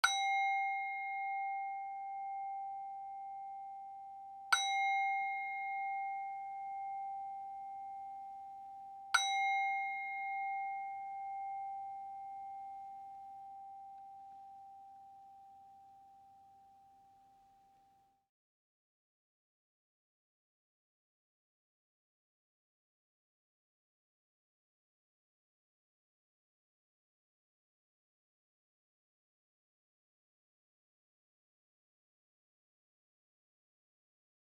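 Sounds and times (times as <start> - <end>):
meditation timer bell: 0.0 - 18.3.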